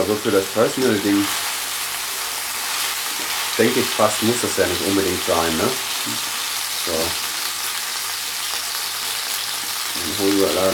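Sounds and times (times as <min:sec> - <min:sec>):
speech: 0:00.0 - 0:01.5, 0:03.6 - 0:07.3, 0:10.0 - 0:10.7
thawed meat searing in a hot pan: 0:00.0 - 0:10.7.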